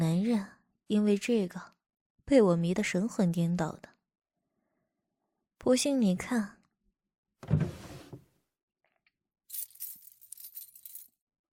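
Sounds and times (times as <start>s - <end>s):
speech: 0.4s - 1.7s, 2.3s - 3.9s, 5.6s - 6.6s, 7.4s - 7.8s
bunch of keys jangling: 9.5s - 11.2s.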